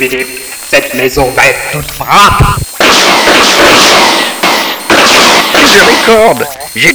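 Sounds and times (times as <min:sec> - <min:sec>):
speech: 0:00.0 - 0:02.6, 0:05.7 - 0:06.9
sharp abrupt hits: 0:02.4 - 0:06.3
gunshot blasts as a robot fires at pots: 0:02.8 - 0:06.2.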